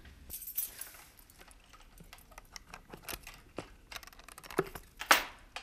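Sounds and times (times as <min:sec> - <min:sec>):
keys jingling: 0:00.3 - 0:05.4.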